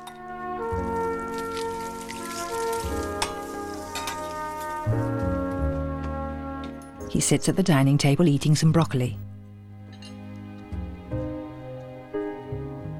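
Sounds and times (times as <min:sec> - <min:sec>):
sustained music with slow shifting chords: 0:00.0 - 0:07.1, 0:09.2 - 0:12.9
eggs sizzling and crackling in a hot pan: 0:00.6 - 0:05.3
speech: 0:07.1 - 0:09.3.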